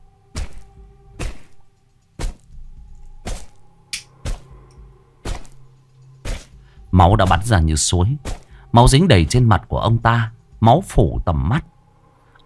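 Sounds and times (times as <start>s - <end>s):
hammer thuds striking a body: 0.3s - 1.6s, 2.2s - 2.6s, 3.2s - 3.6s, 5.2s - 5.6s, 8.2s - 8.5s
speech: 7.0s - 11.7s.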